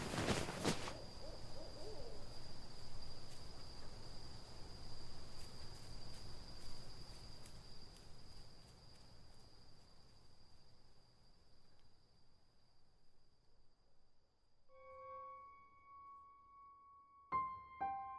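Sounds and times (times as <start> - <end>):
rustle: 0.0 - 12.0
steady high insect drone: 0.0 - 15.9
distant owl hooting: 0.6 - 2.7.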